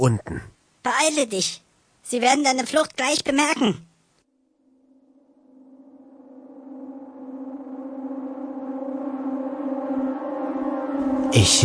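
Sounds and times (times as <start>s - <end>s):
speech: 0.0s - 3.9s, 11.3s - 11.6s
alarm siren wailing: 4.4s - 11.6s.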